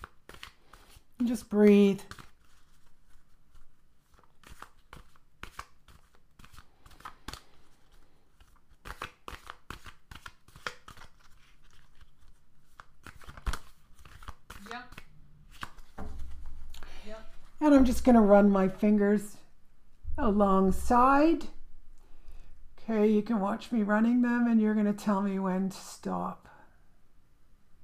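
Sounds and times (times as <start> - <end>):
deck of playing cards being shuffled in a standard shuffle: 0.0 - 16.9
speech: 1.2 - 2.2, 17.7 - 19.4, 20.2 - 21.6, 22.9 - 26.5.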